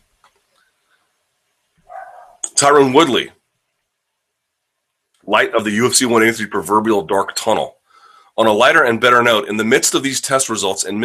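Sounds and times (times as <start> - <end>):
dog barking excitedly: 1.9 - 2.4
speech: 2.6 - 3.4, 5.3 - 7.8, 8.4 - 11.0.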